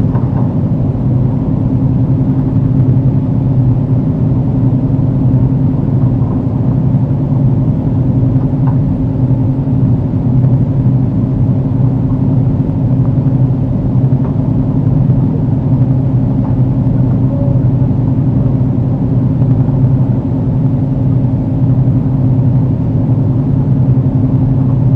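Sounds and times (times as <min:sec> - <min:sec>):
airplane cabin noise in flight: 0:00.0 - 0:24.9
brief small tone: 0:15.2 - 0:18.6.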